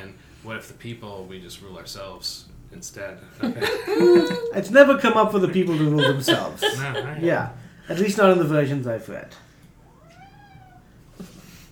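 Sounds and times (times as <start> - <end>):
speech: 0.0 - 9.5
hiss: 0.0 - 11.7
laughter: 3.4 - 4.6, 5.5 - 7.5
house cat meowing: 9.8 - 11.2.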